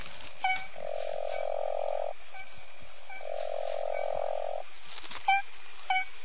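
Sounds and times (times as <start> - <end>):
smooth horned frog Proceratophrys boiei chirping calls: 0.2 - 6.2
smooth horned frog Proceratophrys boiei droning call: 0.3 - 4.6.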